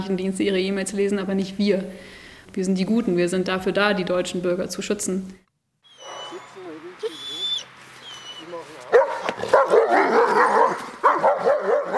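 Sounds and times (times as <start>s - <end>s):
speech: 0.0s - 5.4s
guard dogs barking in an overlapping chorus at night: 5.9s - 6.6s, 8.0s - 11.9s.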